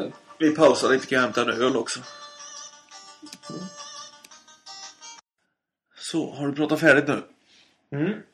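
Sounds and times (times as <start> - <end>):
8-bit NES chiptune mobile phone ringtone: 0.0 - 5.2
speech: 0.1 - 2.3, 6.1 - 8.3.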